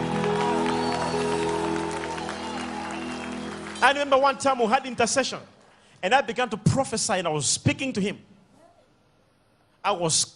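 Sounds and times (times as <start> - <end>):
audience clapping hands: 0.0 - 5.3
speech: 3.8 - 8.3, 9.8 - 10.3.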